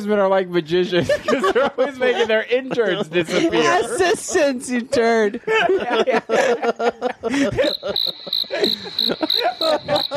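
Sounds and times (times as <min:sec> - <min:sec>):
speech: 0:00.0 - 0:10.1
laughter: 0:00.8 - 0:10.1
cricket chirping: 0:07.6 - 0:10.1.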